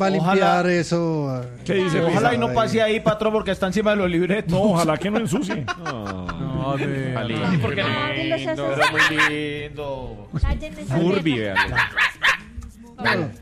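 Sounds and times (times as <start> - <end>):
speech: 0.0 - 12.4, 13.0 - 13.4
laughter: 4.8 - 8.0
guard dog barking and yelping: 8.7 - 9.4, 11.5 - 13.3.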